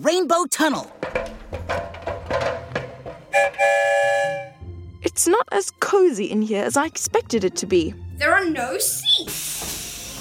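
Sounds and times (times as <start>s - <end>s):
speech: 0.0s - 1.3s, 3.4s - 4.4s, 5.2s - 9.8s
train doors closing with mechanical clunks and rattles: 1.0s - 4.6s
train horn: 3.3s - 4.6s.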